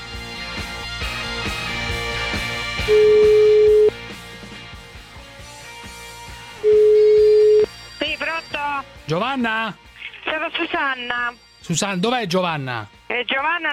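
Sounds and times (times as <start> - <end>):
busy music: 0.0 - 13.7
speech: 2.9 - 3.1, 9.1 - 13.7
outgoing phone call ringback tone: 2.9 - 3.9, 6.6 - 7.7.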